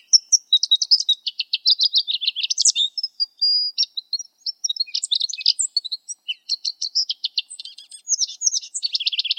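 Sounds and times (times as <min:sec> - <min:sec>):
lesser goldfinch song: 0:00.0 - 0:09.3.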